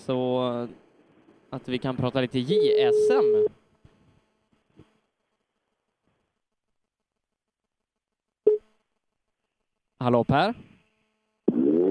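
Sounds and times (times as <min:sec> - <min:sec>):
speech: 0:00.0 - 0:00.9, 0:01.5 - 0:03.6, 0:10.0 - 0:10.7
telephone ringing tone while placing a call: 0:02.5 - 0:03.5.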